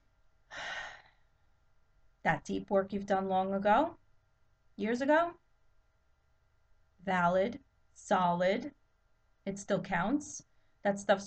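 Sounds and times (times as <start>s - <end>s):
deep breath: 0.5s - 1.4s
speech: 2.2s - 4.0s, 4.8s - 5.4s, 7.0s - 8.8s, 9.4s - 11.2s.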